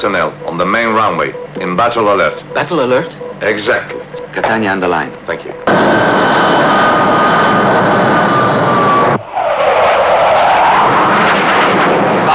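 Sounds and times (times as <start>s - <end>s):
speech: 0.0s - 6.2s
civil airliner engine roar touching down on a runway: 5.7s - 12.3s.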